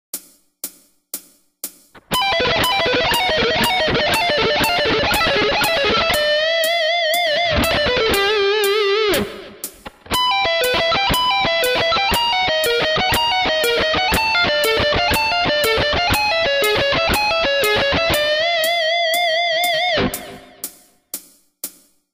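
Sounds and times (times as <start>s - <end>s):
shred guitar: 2.0s - 20.6s.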